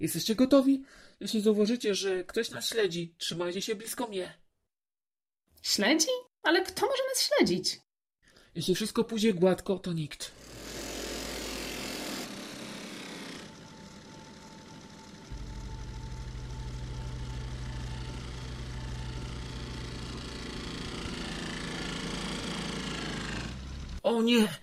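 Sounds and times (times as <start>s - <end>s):
speech: 0.0s - 4.4s, 5.6s - 7.8s, 8.5s - 10.7s, 24.1s - 24.6s
scooter motor engine running and revving: 12.1s - 24.0s.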